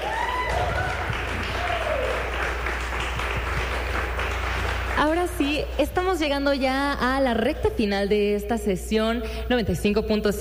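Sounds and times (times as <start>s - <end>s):
faint whoops or voices: 0.0s - 2.3s
crowd applause: 0.0s - 5.9s
speech: 5.0s - 10.3s.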